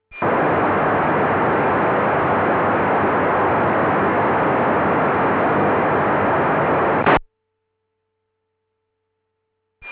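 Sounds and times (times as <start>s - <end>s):
undecoded D-STAR digital radio signal: 0.1s - 7.2s.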